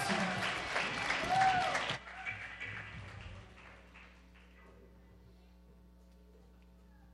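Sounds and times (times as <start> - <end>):
crowd applauding a children's rock band at an anniversary celebration: 0.0 - 4.7.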